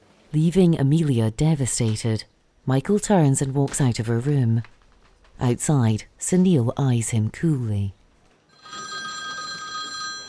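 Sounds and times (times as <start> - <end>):
speech: 0.3 - 4.8, 5.4 - 8.0
telephone ringing outside a hospital room: 8.5 - 10.2.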